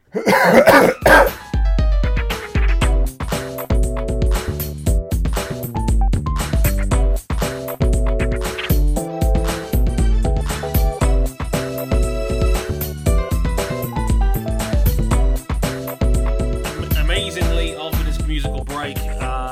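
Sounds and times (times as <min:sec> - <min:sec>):
harsh coughing: 0:00.0 - 0:01.4
instrumental music with a rhythmic beat: 0:00.9 - 0:19.5.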